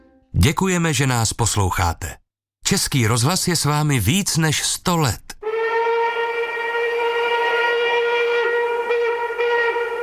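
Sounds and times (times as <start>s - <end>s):
speech: 0.4s - 5.3s
express train whistling as it approaches: 5.4s - 9.9s.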